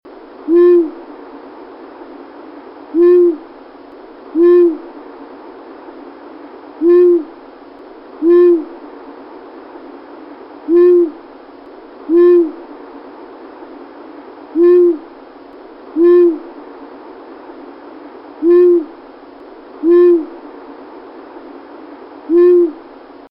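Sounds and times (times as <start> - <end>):
long-eared owl in Gloucestershire: 0.5 - 1.0, 2.9 - 3.5, 4.3 - 4.9, 6.8 - 7.4, 8.2 - 8.8, 10.6 - 11.2, 12.1 - 12.7, 14.5 - 15.2, 15.9 - 16.5, 18.4 - 19.0, 19.8 - 20.4, 22.3 - 22.9.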